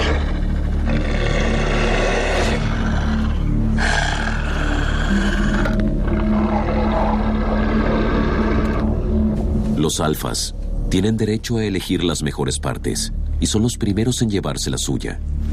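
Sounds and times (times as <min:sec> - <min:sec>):
wolves growling and snarling while feeding on a reindeer: 0:00.0 - 0:09.2
speech: 0:09.9 - 0:15.4.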